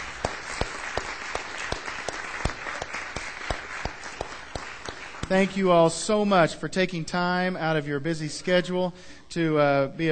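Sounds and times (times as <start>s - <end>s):
room full of people applauding: 0.0s - 5.9s
speech: 5.3s - 10.1s.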